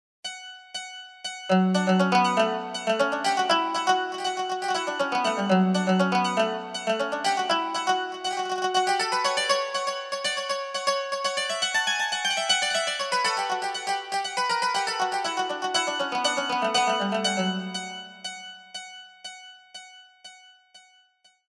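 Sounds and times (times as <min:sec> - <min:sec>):
mandolin: 0:01.5 - 0:18.4.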